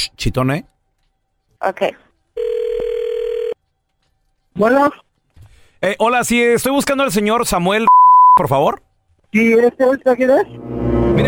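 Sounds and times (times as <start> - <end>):
speech: 0.1 - 0.7, 1.6 - 2.5, 4.6 - 5.1, 5.8 - 11.2
telephone tone while a number is dialed: 2.4 - 3.6.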